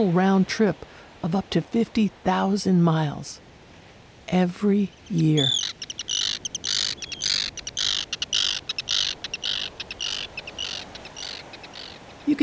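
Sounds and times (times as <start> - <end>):
speech: 0.0 - 3.4, 4.3 - 5.8
background noise: 0.0 - 12.4
Arctic Tern rasping harsh calls: 4.9 - 12.4.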